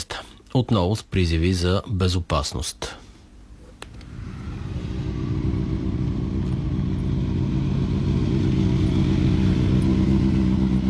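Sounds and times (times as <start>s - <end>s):
speech: 0.5s - 3.0s
motorcycle engines revving at the opening of the motorcycle season in Varna: 3.9s - 10.8s.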